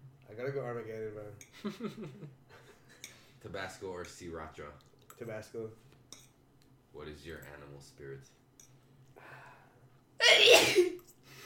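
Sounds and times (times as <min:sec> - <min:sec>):
faint room noise: 0:00.0 - 0:11.4
speech: 0:00.4 - 0:02.6, 0:03.4 - 0:05.9, 0:06.9 - 0:08.4
person sneezing: 0:10.2 - 0:11.0.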